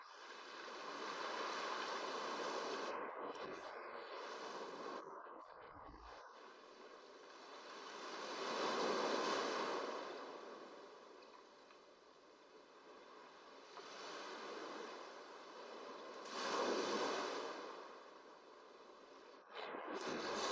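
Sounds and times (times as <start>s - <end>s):
ocean surf washing onto shore: 0.0s - 5.0s, 6.4s - 20.5s.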